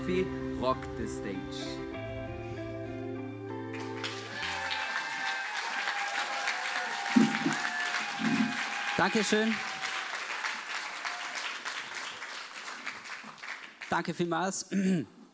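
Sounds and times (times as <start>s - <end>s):
speech: 0.0s - 1.9s, 9.0s - 9.7s, 14.0s - 15.2s
organ-like music: 0.0s - 4.9s
large audience applauding in a reverberant church hall: 3.6s - 14.0s.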